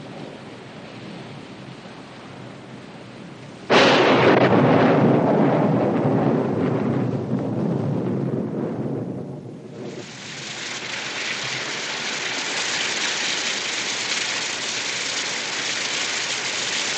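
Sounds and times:
heavy rain pouring down outside a ranch house: 3.7 - 16.9
loud rolling thunderclap of a storm outside a ranch house: 3.7 - 16.9.

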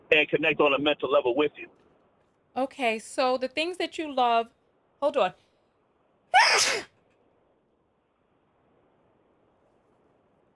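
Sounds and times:
speech: 0.2 - 1.9, 2.6 - 5.4, 6.3 - 6.9
person sneezing: 6.4 - 6.9.

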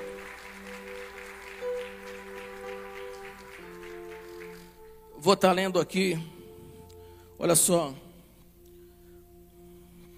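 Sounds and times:
audience applauding: 0.0 - 5.1
sustained keyboard chords: 0.0 - 10.1
speech: 5.2 - 6.4, 7.4 - 8.1.

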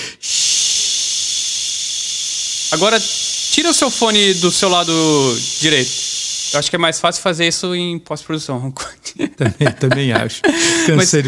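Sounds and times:
pink noise test signal: 0.0 - 7.7
speech: 2.7 - 11.2
laughter: 9.1 - 11.2.

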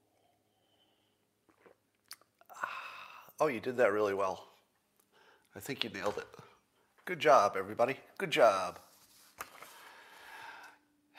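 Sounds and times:
person sipping a drink from a mug: 0.0 - 3.4
slurping: 1.4 - 2.6
speech: 3.4 - 4.5, 5.6 - 6.5, 7.1 - 8.9.

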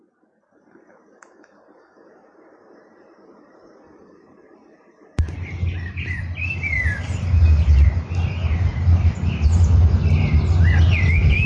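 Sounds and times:
several birds singing in call and response outdoors: 5.2 - 11.4
steady low rumble: 5.2 - 11.4.

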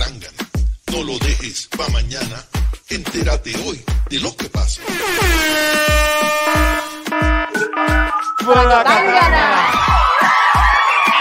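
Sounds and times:
speech: 0.9 - 6.9, 7.6 - 10.0
blaring brassy alarm horn: 4.8 - 8.6
laughter: 8.6 - 10.6.

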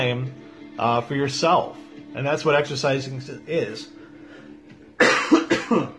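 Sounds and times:
speech: 0.0 - 4.0, 5.7 - 5.9
harsh coughing: 5.0 - 5.9.

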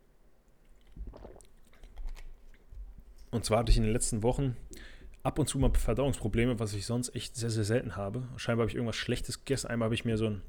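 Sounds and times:
person taking a quick sip of a drink and swallowing: 0.5 - 4.0, 4.6 - 5.2
speech: 3.3 - 10.4.

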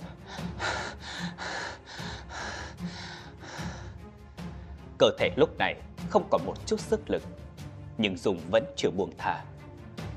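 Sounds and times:
man lying sprawled out gasping and panting for breath: 0.0 - 4.2
speech: 5.0 - 7.4, 8.0 - 9.6.

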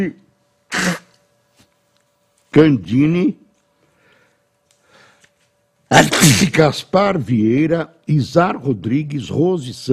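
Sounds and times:
speech: 0.0 - 0.2, 2.5 - 3.4, 5.9 - 9.9
person sneezing: 0.7 - 1.2.

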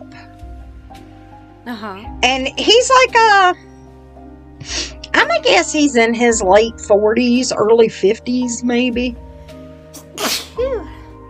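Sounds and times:
speech: 1.6 - 3.7, 4.6 - 4.8, 5.4 - 9.3
single loud sneeze: 10.0 - 10.8.

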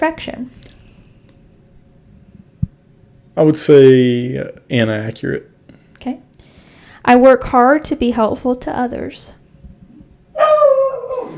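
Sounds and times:
speech: 0.0 - 0.6, 3.4 - 6.3, 7.1 - 9.4
hound dog baying howl: 10.4 - 11.3.

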